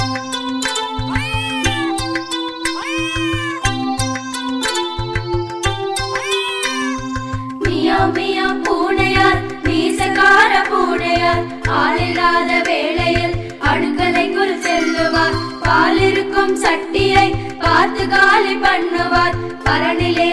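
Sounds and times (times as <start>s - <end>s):
bouncy rhythmic music with steady bass pulse: 0.0s - 20.3s
cat meowing: 1.1s - 2.1s, 2.7s - 3.8s, 6.1s - 7.6s
speech: 15.9s - 20.3s.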